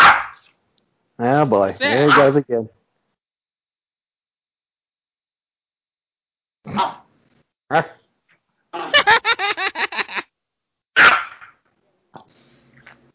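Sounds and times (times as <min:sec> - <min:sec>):
small dog yapping with high-pitched barks: 0:00.0 - 0:00.5, 0:01.8 - 0:02.3, 0:06.7 - 0:07.1, 0:11.0 - 0:11.5
speech: 0:01.2 - 0:02.8, 0:06.7 - 0:07.0, 0:07.7 - 0:08.0
laughter: 0:08.8 - 0:10.2.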